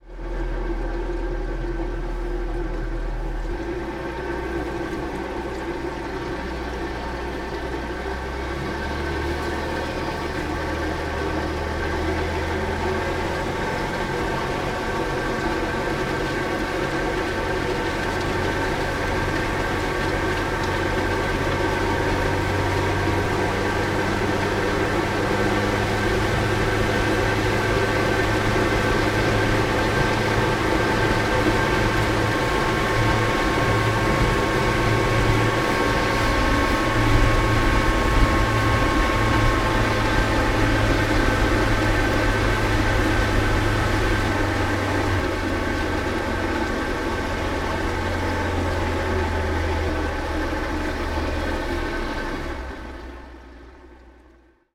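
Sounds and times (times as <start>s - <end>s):
boat engine running and stopping heard onboard: 0.0s - 54.6s.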